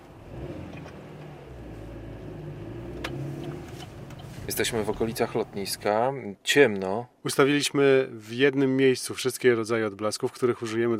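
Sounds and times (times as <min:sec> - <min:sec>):
car engine and road noise at night on the drive to an airport: 0:00.0 - 0:06.1
speech: 0:04.5 - 0:10.9.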